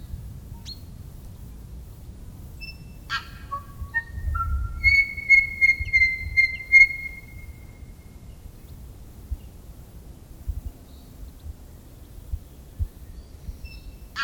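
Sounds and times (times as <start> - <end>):
tui song with pure whistled notes and ringing whistle: 2.6 - 7.9.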